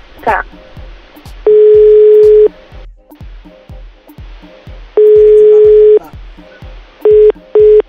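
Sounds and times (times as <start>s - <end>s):
speech: 0.2s - 0.7s
steady low rhythmic thump: 0.2s - 7.8s
phone line ringback tone on an unanswered call: 1.5s - 2.5s, 5.0s - 6.0s, 7.1s - 7.8s
short beeps: 1.5s - 2.5s, 5.0s - 6.0s, 7.1s - 7.8s.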